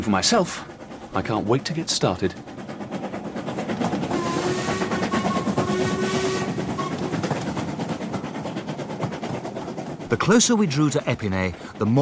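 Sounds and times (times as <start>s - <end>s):
speech: 0.0s - 2.6s, 10.1s - 11.9s
train rolling into a station with rumbling clatter: 0.0s - 11.9s
thin sustained squealing tone: 4.1s - 7.2s.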